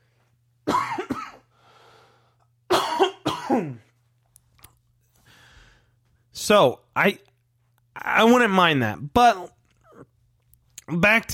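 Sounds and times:
faint steady electrical hum: 0:00.0 - 0:11.3
harsh coughing: 0:00.6 - 0:01.5, 0:02.7 - 0:03.9
raspy breath: 0:01.5 - 0:02.5, 0:05.2 - 0:06.0
speech: 0:03.5 - 0:03.8, 0:06.5 - 0:07.3, 0:08.0 - 0:09.6, 0:10.9 - 0:11.3.

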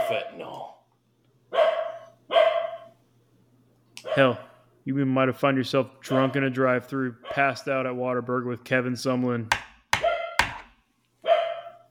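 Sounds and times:
speech: 0:00.1 - 0:00.7, 0:04.2 - 0:09.6
dog barking: 0:01.5 - 0:03.0, 0:04.0 - 0:04.6, 0:06.1 - 0:06.4, 0:10.0 - 0:10.6, 0:11.2 - 0:11.8.

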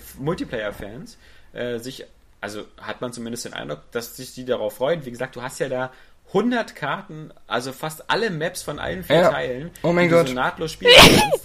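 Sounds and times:
speech: 0:00.2 - 0:11.4
man sneezing loudly: 0:10.9 - 0:11.4.

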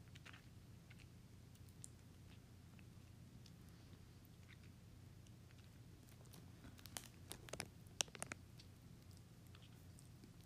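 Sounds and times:
steady low hum: 0:00.0 - 0:10.4
tapping and squishing on a yellow cake squishy: 0:06.1 - 0:08.7.

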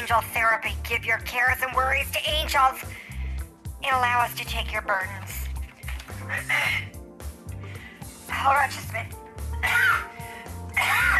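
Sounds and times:
speech: 0:00.1 - 0:03.0, 0:03.8 - 0:05.4, 0:06.1 - 0:07.0, 0:08.3 - 0:10.1
harsh rasping throaty coughs: 0:09.6 - 0:11.1.

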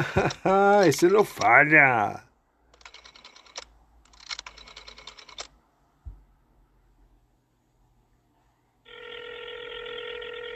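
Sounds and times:
laughter: 0:00.0 - 0:00.8
speech: 0:00.0 - 0:02.3
old telephone dial clicking: 0:02.8 - 0:05.5.

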